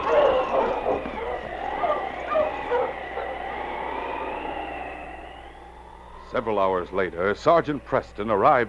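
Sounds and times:
pack of husky sled dogs yelping and barking: 0.0s - 5.0s
sled dogs howling: 0.0s - 6.1s
speech: 6.3s - 8.6s.

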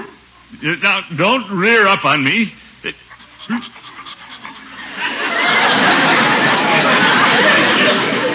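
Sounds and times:
speech: 0.6s - 3.8s
large dog panting: 3.0s - 6.0s
laughter: 3.3s - 8.3s.

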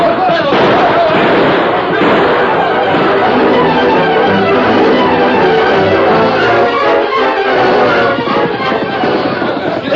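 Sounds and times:
gunshots in a radio drama shootout: 0.0s - 6.9s
people shouting during a shootout: 2.0s - 9.9s.

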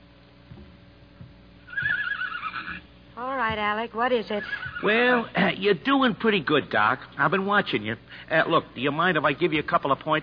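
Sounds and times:
dull thuds: 0.4s - 2.0s
horse whinnying in a shed: 1.7s - 2.9s, 4.3s - 5.3s
speech: 3.2s - 10.2s.

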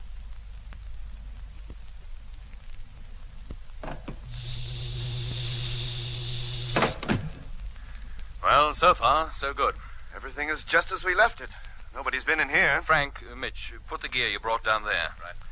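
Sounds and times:
constant hissing background: 0.0s - 15.5s
spaceship door clunk: 3.8s - 4.2s, 6.7s - 7.5s
spaceship main door sliding open with humming motor whine: 4.2s - 7.6s
heavy spaceship door thuds: 6.7s - 7.5s
speech: 8.7s - 15.4s.

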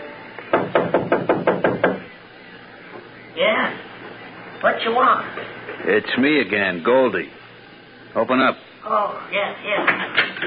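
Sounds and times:
firm knocking on a wooden shanty door: 0.5s - 2.1s
speech: 4.6s - 7.4s, 8.2s - 10.4s.

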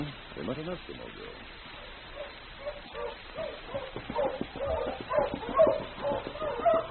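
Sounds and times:
speech: 0.5s - 1.4s
pack of sled dog huskies barking and yipping: 1.7s - 6.9s.

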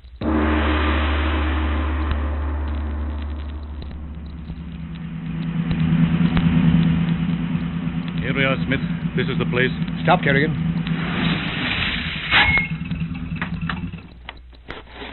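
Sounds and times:
car engine starting and running as the vehicle pulls away: 0.0s - 14.3s
speech: 8.4s - 10.7s.

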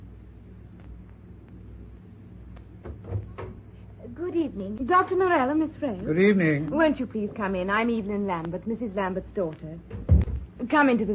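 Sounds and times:
steady hum: 0.0s - 11.1s
low thud of a front door: 2.8s - 3.6s, 9.9s - 10.6s
speech: 4.2s - 11.1s.

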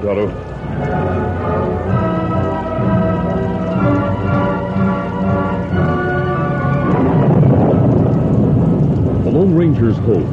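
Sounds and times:
speech: 0.0s - 2.0s, 9.4s - 10.3s
heavy rain: 0.0s - 10.3s.

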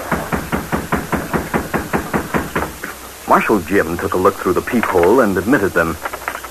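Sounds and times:
knocking on a wooden back door: 0.1s - 2.8s
speech: 3.3s - 6.2s.

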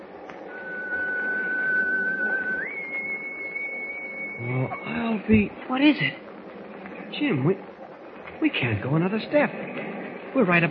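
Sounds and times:
long steady whistle: 0.0s - 5.3s
constant rumbling noise: 0.0s - 10.6s
speech: 4.4s - 6.2s, 7.2s - 7.7s, 8.4s - 10.6s.

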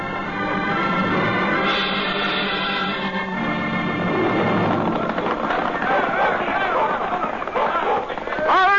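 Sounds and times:
horses of a sheriff's posse galloping: 0.3s - 8.7s.

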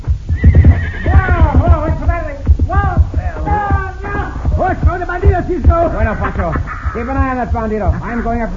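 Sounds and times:
rhythmic thudding: 0.0s - 8.5s
horse neighing: 0.3s - 1.9s
laughter: 5.8s - 8.5s
speech: 5.8s - 8.5s.

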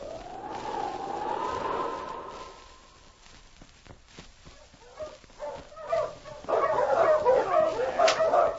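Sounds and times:
long wavering howl-like tone: 0.0s - 3.2s
loud rapid dog barking: 4.8s - 8.5s.

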